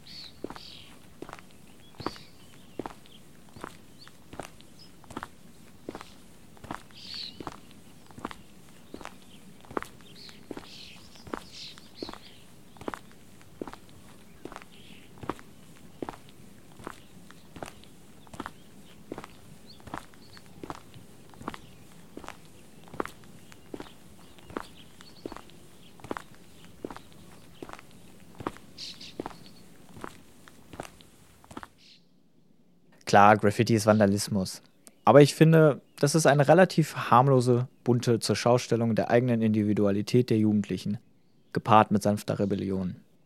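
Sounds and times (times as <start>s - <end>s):
footsteps crunching on a dirt path: 0.0s - 31.8s
faint outdoor background: 0.0s - 43.2s
speech: 33.2s - 43.0s.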